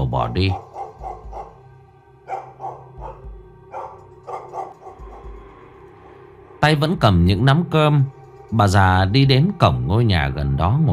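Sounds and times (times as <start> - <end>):
speech: 0.1 - 0.7, 6.6 - 10.9
house dog barking: 0.5 - 1.6, 2.2 - 5.4.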